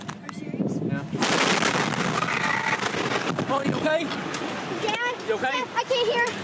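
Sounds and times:
sustained roaring rumble after fertilizer plant explosion: 0.7s - 4.8s
huge explosion at a fertilizer plant: 1.2s - 3.7s
speech: 3.6s - 4.4s, 5.3s - 6.4s.

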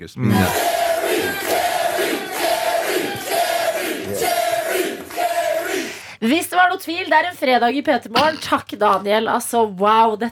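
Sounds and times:
speech: 0.0s - 1.6s, 6.2s - 10.3s
large studio audience chanting a two-syllable name: 0.3s - 6.1s.

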